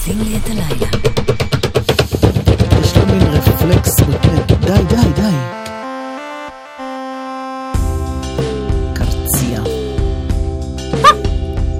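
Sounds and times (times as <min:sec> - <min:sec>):
speech: 0:00.0 - 0:01.4, 0:03.2 - 0:05.4
steady music bed with a pulsing low beat: 0:00.0 - 0:11.7
single sharp high dog bark or yelp: 0:11.0 - 0:11.3.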